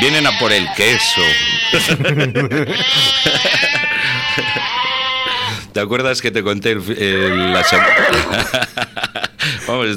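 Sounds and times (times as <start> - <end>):
sheep bleating: 0.0 - 2.0, 2.7 - 5.5, 7.2 - 8.3
speech: 0.0 - 3.6, 5.8 - 9.9
laughter: 1.7 - 5.0, 7.7 - 9.6.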